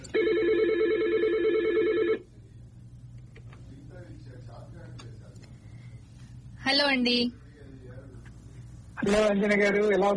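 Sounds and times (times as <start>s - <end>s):
quiet hum: 0.0s - 10.1s
warbling electronic telephone ring as a call is put through: 0.1s - 2.2s
speech: 6.9s - 7.4s, 9.0s - 10.1s.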